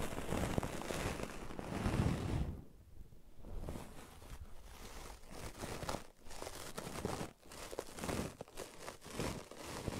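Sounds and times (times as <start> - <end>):
brushing and scratching: 0.0 - 2.6, 3.4 - 9.9.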